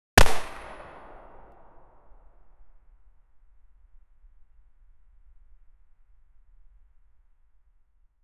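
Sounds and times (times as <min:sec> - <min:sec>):
extremely dry MP5 9mm gunshot: 0:00.2 - 0:01.9.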